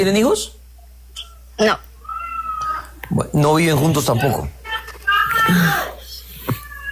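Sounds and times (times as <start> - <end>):
speech: 0.0 - 0.6, 1.6 - 1.9, 3.1 - 4.6, 5.5 - 6.0
sick child crying and screaming in another room: 2.0 - 2.9, 5.1 - 6.9.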